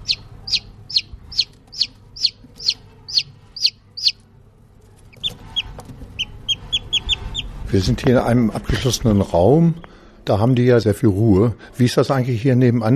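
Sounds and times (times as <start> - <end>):
newly hatched chicks peeping in an enclosure: 0.0 - 4.2, 5.0 - 8.1
low hum: 0.0 - 12.9
speech: 7.8 - 12.9.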